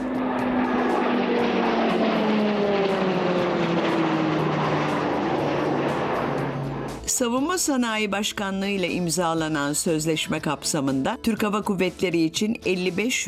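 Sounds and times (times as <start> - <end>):
Hürkuş trainer turboprop aircraft with PT6A-68T engine, propeller drone: 0.0 - 7.7
speech: 7.2 - 13.2.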